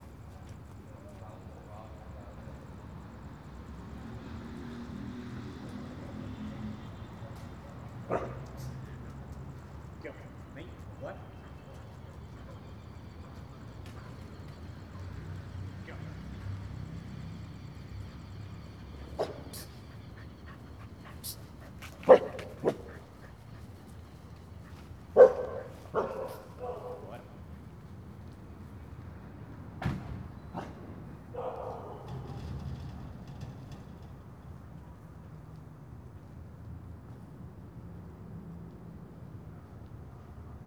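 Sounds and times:
traffic: 0.0 - 40.6
man calling a dog: 5.7 - 16.3, 18.8 - 23.5, 25.2 - 27.6
dog barking: 8.0 - 8.8, 19.0 - 23.2, 25.1 - 27.4, 30.6 - 32.5
dog walking: 19.2 - 27.0.

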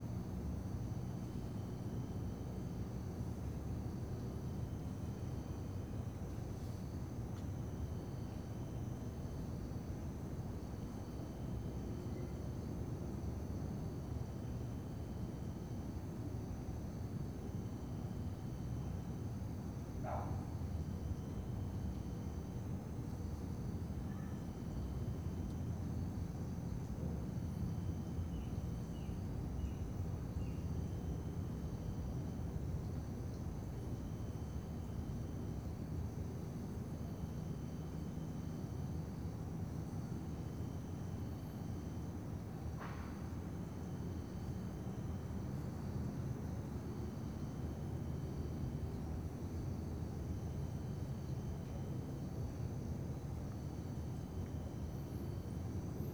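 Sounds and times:
crickets chirping in a town square at night: 0.2 - 56.1
dog barking: 20.0 - 20.5.

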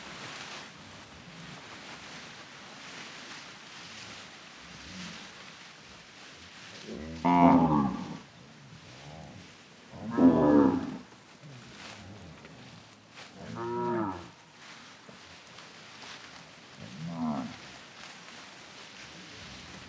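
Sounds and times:
cattle hooves walking on grass pasture: 0.0 - 19.8
quiet rustling: 0.0 - 19.8
cattle herd mooing with deep harmonic moos: 7.2 - 8.2, 10.1 - 11.0.

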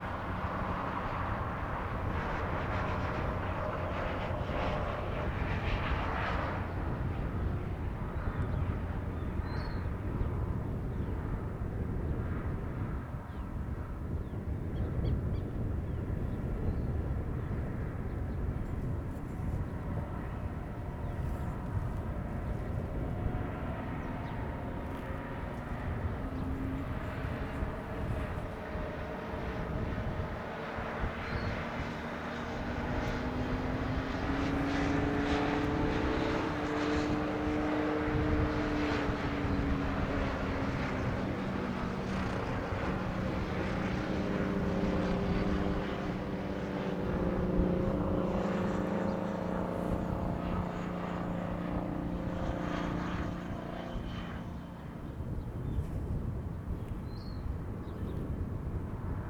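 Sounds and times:
airplane passing: 0.0 - 59.2
strong wind: 0.0 - 59.2
road traffic: 18.6 - 57.7.

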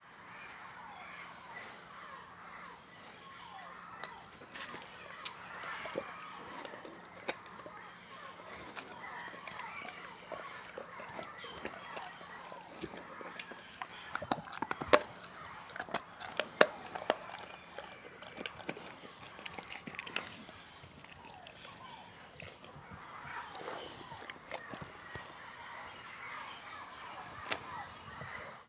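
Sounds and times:
birds in the background: 0.0 - 28.6
dog gnawing a bone: 3.7 - 26.6.

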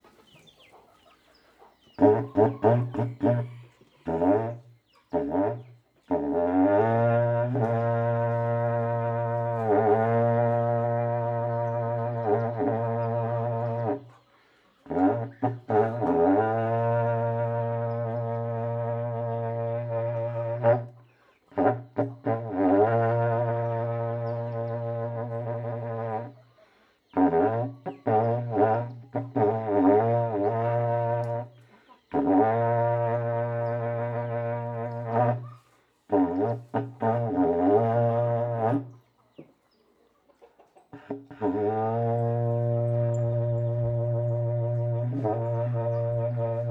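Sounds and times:
chickens clucking: 0.0 - 6.3, 12.4 - 16.2, 31.2 - 32.2, 38.9 - 41.4
berrante cattle horn blowing indoors: 2.0 - 14.2, 14.9 - 26.5, 27.1 - 39.0, 41.0 - 46.7.

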